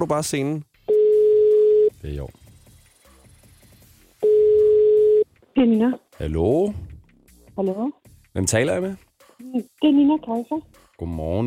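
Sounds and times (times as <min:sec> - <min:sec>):
speech: 0:00.0 - 0:00.7, 0:02.0 - 0:02.4, 0:05.6 - 0:06.9, 0:07.6 - 0:11.4
telephone ringing tone: 0:00.9 - 0:01.9, 0:04.2 - 0:05.2.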